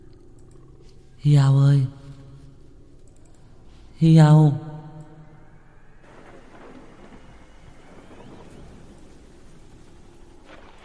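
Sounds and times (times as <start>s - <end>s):
speech: 1.2s - 2.0s, 4.0s - 4.7s
low thunder-like rumble: 5.4s - 10.8s
heavy rain pouring in a storm: 6.0s - 10.8s.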